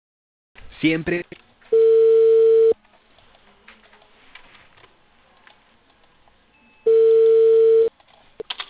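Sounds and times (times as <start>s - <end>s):
speech: 0.8s - 1.4s
telephone ringback tones on an outgoing call to a cable company in Peru: 1.7s - 2.8s, 6.6s - 7.9s.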